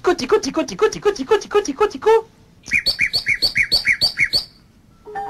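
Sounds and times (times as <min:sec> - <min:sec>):
speech: 0:00.0 - 0:03.0
nightingale singing: 0:02.6 - 0:04.7.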